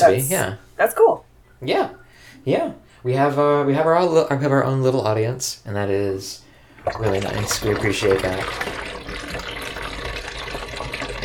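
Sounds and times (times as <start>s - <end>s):
speech: 0.0s - 9.4s
photographic stop bath liquid pouring into a sink: 6.7s - 11.2s.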